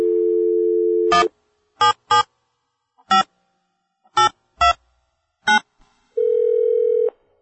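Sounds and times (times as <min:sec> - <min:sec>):
steady phone dial tone: 0:00.0 - 0:01.3, 0:06.2 - 0:07.1
continuous phone ringing tone: 0:00.0 - 0:02.2, 0:06.2 - 0:07.2
speech: 0:01.1 - 0:02.2
phone keypad beeps: 0:01.1 - 0:02.3, 0:04.2 - 0:04.8.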